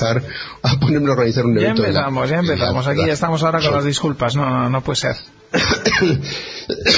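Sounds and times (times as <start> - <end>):
speech: 0.0 - 6.9
unwell person coughing roughly: 5.6 - 6.9.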